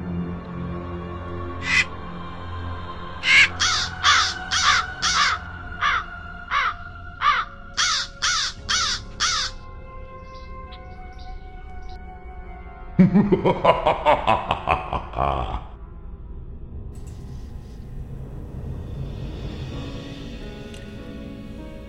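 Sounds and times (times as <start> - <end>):
low droning background: 0.0 - 21.8
crow cawing: 1.6 - 1.9, 3.2 - 9.6
laughter: 13.0 - 15.8
speech: 13.1 - 14.6.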